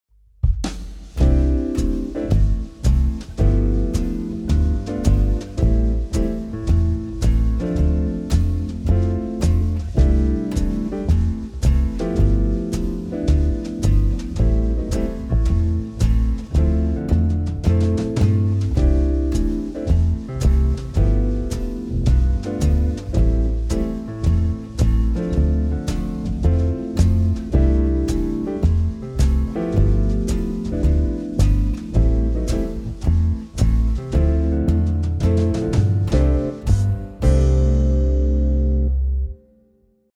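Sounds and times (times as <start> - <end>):
chords in C without melody: 1.2 - 39.9.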